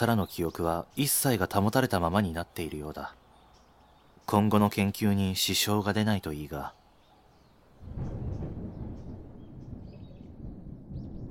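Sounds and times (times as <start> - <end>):
speech: 0.0 - 3.2, 4.3 - 6.8, 7.8 - 8.3
faint bird chirps: 0.0 - 11.2
deep rumble of thunder: 7.8 - 11.2.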